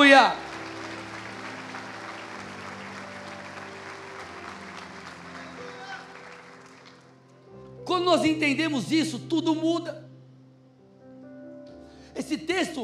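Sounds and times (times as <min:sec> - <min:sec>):
large crowd applauding: 0:00.0 - 0:07.4
low sustained musical tones: 0:00.0 - 0:11.9
speech: 0:00.1 - 0:00.4, 0:07.9 - 0:10.0, 0:12.2 - 0:12.8.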